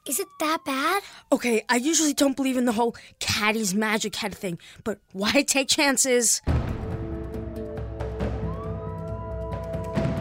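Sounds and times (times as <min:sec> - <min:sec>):
police sirens wailing with a slowly rising tone: 0:00.0 - 0:10.1
speech: 0:00.1 - 0:06.7.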